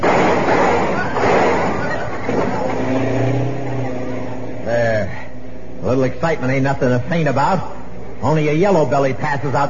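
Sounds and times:
road noise on a highway: 0.0 - 6.4
car engine revving and accelerating through a police roadblock barrier: 1.2 - 4.7
speech: 6.0 - 9.6.

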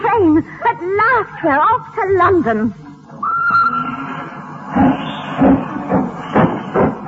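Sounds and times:
speech: 0.2 - 2.8
steam train chuffing pulling out of the station: 4.7 - 7.0.

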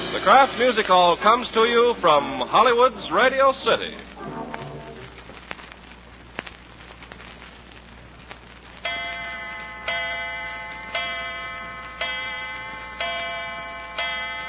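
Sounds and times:
speech: 0.3 - 4.1
clock chiming for 6 o'clock: 8.9 - 14.4.

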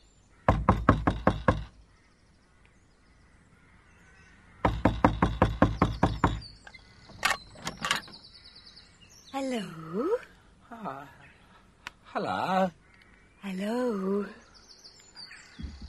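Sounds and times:
rapid loud knocking on the wooden door of a humble dwelling: 0.5 - 1.8, 4.6 - 6.5, 15.6 - 15.8
speech: 9.4 - 11.2, 12.1 - 12.8, 13.4 - 14.4.

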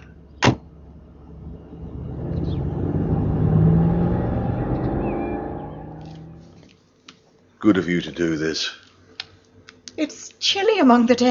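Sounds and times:
car engine rumbling and car pulling away: 0.0 - 6.7
speech: 7.6 - 8.8, 10.0 - 11.2.

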